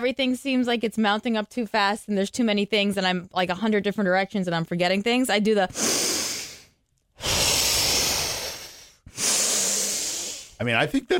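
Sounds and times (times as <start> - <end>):
speech: 0.0 - 6.1, 10.6 - 11.1
person taking slow deep breaths: 5.7 - 10.6.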